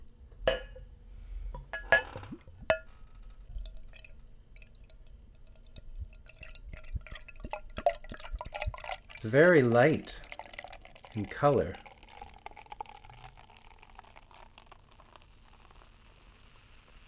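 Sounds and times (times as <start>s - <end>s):
sharp glass clinks: 0.5s - 0.8s, 1.7s - 2.9s
10% alcohol 30 IBU beer poured into a glass: 3.4s - 17.0s
fizzy crackle of beer bubbles: 3.4s - 17.0s
speech: 9.2s - 10.2s, 11.2s - 11.8s.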